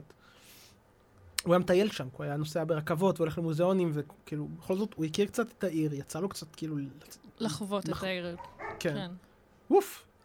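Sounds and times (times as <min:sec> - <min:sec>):
speech: 0:01.4 - 0:10.1
two dogs yapping in a recording studio: 0:08.4 - 0:09.0.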